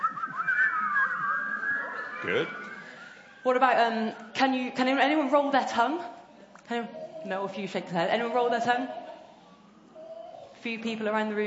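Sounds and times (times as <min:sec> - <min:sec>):
group of audience members whistling together: 0:00.0 - 0:03.5
speech: 0:02.2 - 0:02.7, 0:03.4 - 0:09.0, 0:10.6 - 0:11.4.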